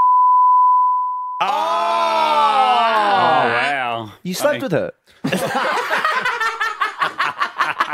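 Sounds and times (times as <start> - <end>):
single-pitched censor bleep over a name: 0.0 - 1.4
person groaning: 1.4 - 3.8
speech: 4.2 - 5.7
laughter: 5.2 - 7.9.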